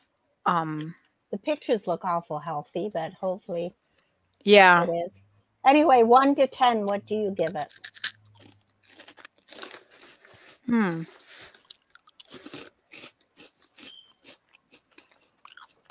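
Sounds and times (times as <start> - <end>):
speech: 0.4 - 3.8, 4.4 - 8.0, 10.7 - 11.2
crisp salty snack being chewed: 7.4 - 15.9
person humming: 10.7 - 11.2.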